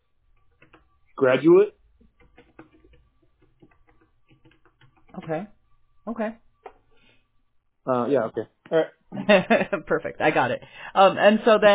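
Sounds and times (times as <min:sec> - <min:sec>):
typing on a computer keyboard: 0:00.4 - 0:01.0, 0:02.0 - 0:05.3
speech: 0:01.2 - 0:01.8, 0:05.3 - 0:06.4, 0:07.8 - 0:11.7.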